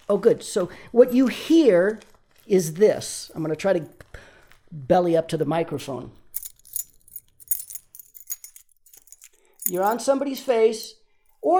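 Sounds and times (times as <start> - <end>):
speech: 0.1 - 6.2, 9.7 - 11.5
keys jingling: 6.4 - 10.1.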